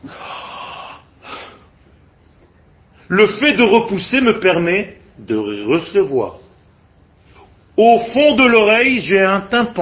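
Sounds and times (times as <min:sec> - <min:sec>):
short breathy exhale: 0:00.0 - 0:01.7
speech: 0:03.1 - 0:06.4, 0:07.8 - 0:09.8.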